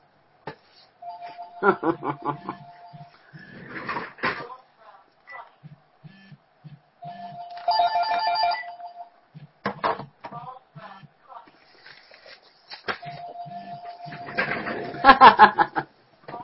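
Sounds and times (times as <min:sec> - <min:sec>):
telephone ringing in electronic bursts: 0:01.0 - 0:03.2, 0:07.0 - 0:09.1, 0:13.0 - 0:15.4
laughter: 0:01.6 - 0:02.8, 0:14.8 - 0:15.9.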